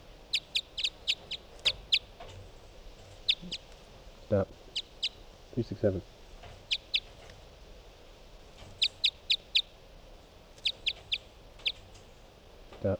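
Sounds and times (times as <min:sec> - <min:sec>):
hiss: 0:00.0 - 0:12.9
bird chirping: 0:00.2 - 0:03.7, 0:04.6 - 0:07.3, 0:08.6 - 0:09.8, 0:10.6 - 0:12.0
speech: 0:04.3 - 0:04.6, 0:05.6 - 0:06.2.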